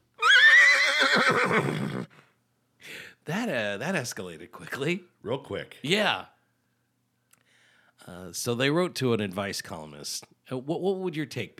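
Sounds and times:
horse whinnying: 0:00.2 - 0:02.2
speech: 0:01.6 - 0:02.1, 0:02.8 - 0:06.4, 0:08.0 - 0:11.5.

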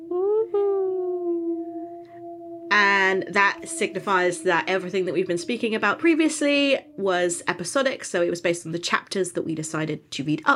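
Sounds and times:
wolf howling: 0:01.1 - 0:08.4
speech: 0:02.7 - 0:10.5.

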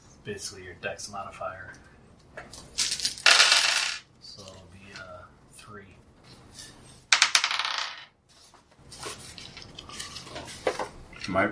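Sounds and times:
handling noises: 0:00.0 - 0:11.5
speech: 0:00.2 - 0:02.9, 0:05.7 - 0:06.1, 0:11.3 - 0:11.5
dice rolled during a tabletop role-playing game session: 0:02.4 - 0:05.2, 0:06.6 - 0:11.4.

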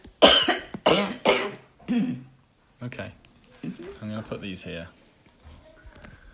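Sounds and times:
person clearing throat: 0:00.2 - 0:02.3
speech: 0:02.8 - 0:05.0.

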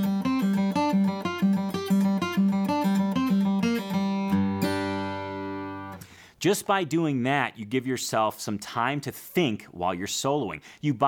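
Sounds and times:
guitar pull-offs with upstroke on open G string: 0:00.0 - 0:06.2
speech: 0:06.4 - 0:11.0.

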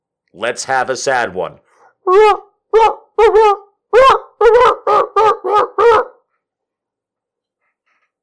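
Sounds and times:
speech: 0:00.3 - 0:04.7
dog barking: 0:04.0 - 0:06.2.

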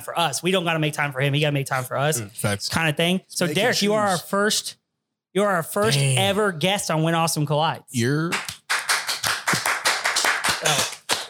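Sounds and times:
speech: 0:00.0 - 0:08.5
small group hands clapping: 0:08.2 - 0:11.2.

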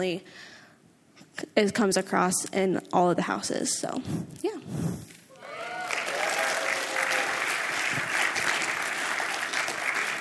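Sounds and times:
speech: 0:00.0 - 0:00.5, 0:01.4 - 0:05.2
live audience applause: 0:05.3 - 0:10.1.

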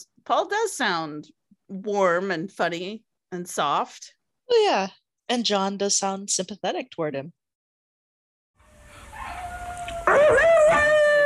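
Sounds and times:
speech: 0:00.0 - 0:07.4
seven-week-old puppy howling and yelping: 0:08.8 - 0:11.2.

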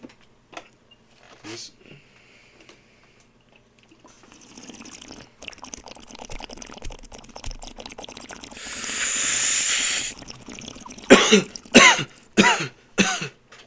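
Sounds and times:
water bubbling in a bong during a hit: 0:04.0 - 0:12.6
breathy rush of air: 0:08.5 - 0:10.4
harsh coughs: 0:11.1 - 0:13.4.

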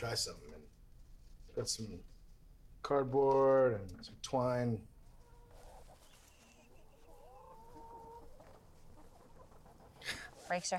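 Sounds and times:
speech: 0:00.0 - 0:00.8, 0:01.6 - 0:02.2, 0:02.8 - 0:04.9, 0:10.5 - 0:10.7
farmyard noise: 0:02.9 - 0:10.7
chickens clucking and warbling: 0:05.0 - 0:10.6.

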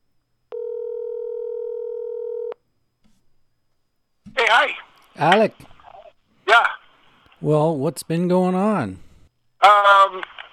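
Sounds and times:
telephone dial tone as a phone call is placed: 0:00.5 - 0:02.6
speech: 0:04.6 - 0:05.7, 0:07.4 - 0:09.0, 0:09.6 - 0:10.4.

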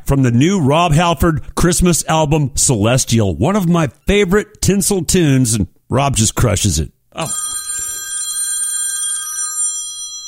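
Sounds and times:
speech: 0:00.1 - 0:07.6
telephone ringing with metallic bell tone for incoming call: 0:07.2 - 0:10.2.

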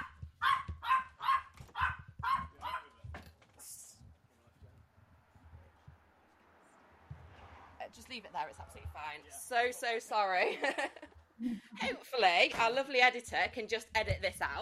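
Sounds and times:
small dog barking: 0:00.0 - 0:03.0
speech: 0:08.0 - 0:14.5
laughter: 0:10.2 - 0:12.0.

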